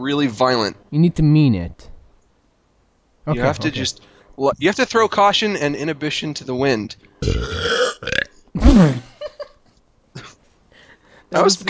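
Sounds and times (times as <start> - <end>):
speech: 0.0 - 1.9, 3.2 - 9.1, 11.3 - 11.6
loud burps, raspy and deep: 7.2 - 9.0.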